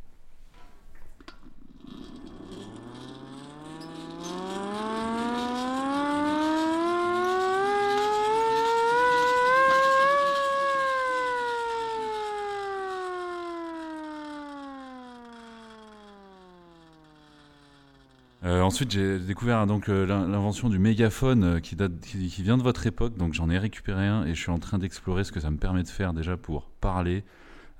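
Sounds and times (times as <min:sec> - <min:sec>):
hand-cranked siren rising and falling: 0:01.7 - 0:19.6
speech: 0:18.7 - 0:27.7.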